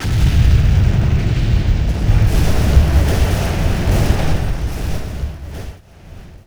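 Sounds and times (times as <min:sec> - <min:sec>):
rumble: 0:00.0 - 0:06.4.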